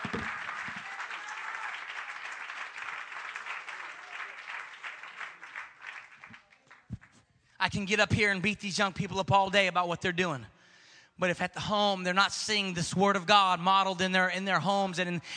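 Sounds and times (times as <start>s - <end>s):
audience clapping during a morning sermon: 0.0s - 7.2s
speech: 7.6s - 10.5s, 11.2s - 15.3s.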